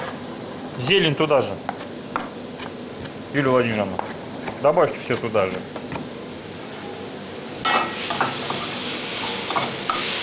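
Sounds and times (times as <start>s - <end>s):
speech: 0.8s - 2.3s, 3.3s - 5.8s
garlic, onion, pepper and zucchini sizzling while stewing in a pan: 7.3s - 10.2s.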